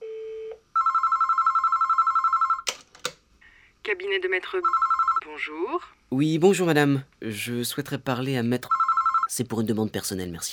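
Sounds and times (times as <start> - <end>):
steady telephone dial tone: 0.0 - 2.6, 4.6 - 5.2
rapidly warbling telephone ring over the line: 0.8 - 2.6, 4.6 - 5.2, 8.7 - 9.3
speech: 3.9 - 10.5.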